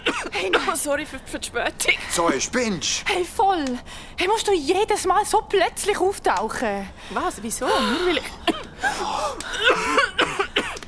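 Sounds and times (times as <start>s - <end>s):
person coughing: 0.0s - 0.8s, 7.8s - 10.8s
speech: 0.4s - 10.0s.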